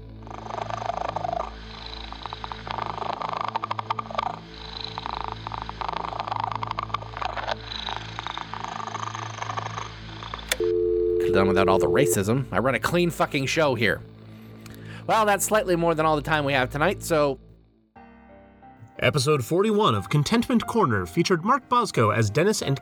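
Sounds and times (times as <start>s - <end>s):
kittens purring: 0.0s - 10.5s
speech: 11.3s - 14.1s, 15.1s - 17.4s, 19.0s - 22.8s.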